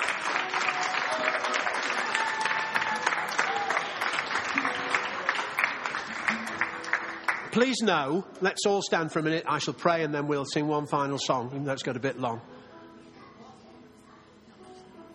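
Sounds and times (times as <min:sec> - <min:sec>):
sustained applause from a sizable audience: 0:00.0 - 0:07.8
speech: 0:07.6 - 0:12.5.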